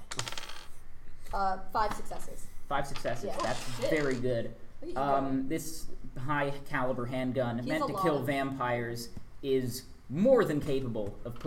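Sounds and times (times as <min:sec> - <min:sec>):
many dice tumbling across a hard tabletop: 0:00.0 - 0:00.8, 0:02.9 - 0:04.2
speech: 0:01.3 - 0:11.4.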